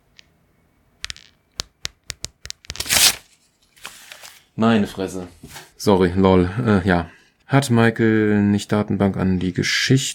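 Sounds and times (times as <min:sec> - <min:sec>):
sheets of paper torn apart by hand: 0:02.7 - 0:04.4
speech: 0:04.6 - 0:10.1.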